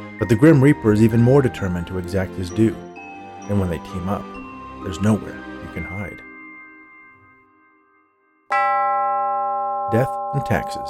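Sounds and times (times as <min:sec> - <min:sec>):
speech: 0:00.2 - 0:02.9, 0:03.5 - 0:06.3, 0:09.9 - 0:10.8
small silver door bell ringing: 0:06.6 - 0:10.8.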